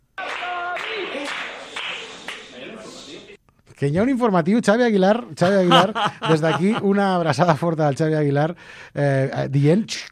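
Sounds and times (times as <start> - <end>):
loud dense ovation of clapping: 0.2 - 2.8
speech: 3.8 - 10.1
laughter: 5.4 - 7.3.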